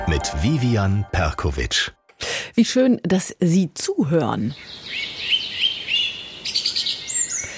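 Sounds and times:
speech: 0.1 - 4.8
birds chirping and tweeting: 4.1 - 7.5.

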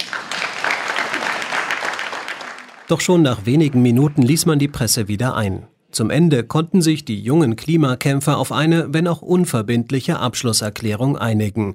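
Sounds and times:
applause for a climate activist at a youth climate summit in Lausanne: 0.0 - 5.0
speech: 2.9 - 11.7.

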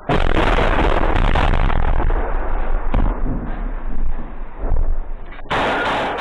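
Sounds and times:
heavy explosion in combat: 0.0 - 6.1
sharp gunshots in combat: 0.0 - 6.1.

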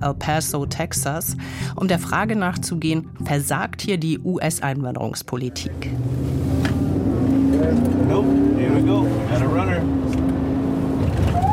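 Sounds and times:
speech: 0.0 - 6.2, 7.7 - 10.2
border police patrol car engine accelerating in El Paso, Texas: 5.5 - 11.5.

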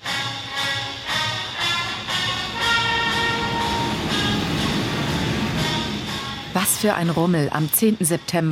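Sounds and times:
train wheels squealing metallically as it slows: 0.5 - 6.6
train wheels clickety-clack over rail joints: 0.5 - 8.2
speech: 6.6 - 8.5.

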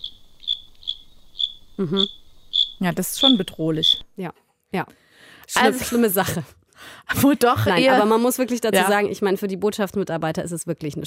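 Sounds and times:
steppe cricket chirping: 0.0 - 4.2
speech: 1.8 - 2.2, 2.8 - 11.0.

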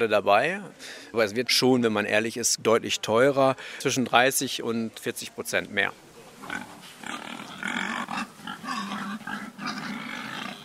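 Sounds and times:
speech: 0.0 - 7.8
busy outdoor noise in a farmyard: 0.0 - 10.6
pig grunting and snorting while pushed across a farmyard with a plastic board: 6.4 - 10.6.

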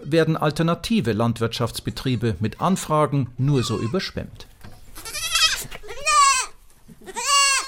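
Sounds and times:
speech: 0.1 - 4.5
goats bleating on a farm near Nimbin, Australia: 3.4 - 4.1, 4.9 - 7.6.

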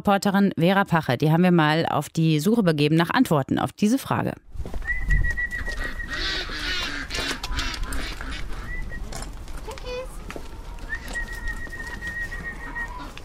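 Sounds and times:
speech: 0.0 - 4.9
chickens clucking and squawking while being fed bread: 5.6 - 9.0, 10.1 - 13.2.

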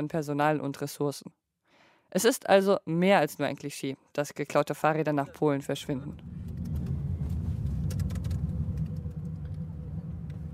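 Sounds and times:
speech: 0.0 - 1.4, 2.1 - 6.5
car driving toward Poznań Poland heard from inside the cabin: 6.0 - 10.5.

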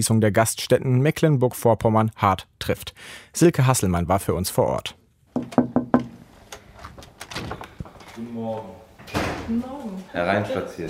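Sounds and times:
speech: 0.0 - 5.6, 8.2 - 10.8
knocking on the window of a closed fish restaurant: 5.4 - 6.2.

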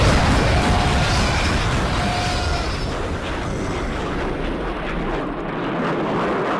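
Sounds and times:
video game bombs exploding: 0.0 - 6.5.

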